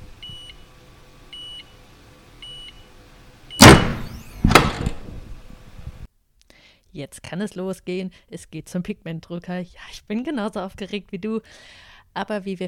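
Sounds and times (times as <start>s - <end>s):
short electronic beeps of a heat press: 0.3s - 0.6s
heat press releasing with loud sharp hissing thumps: 3.6s - 5.2s
heat press fixing coating onto a T-shirt rumbling: 3.6s - 5.5s
speech: 7.0s - 12.6s.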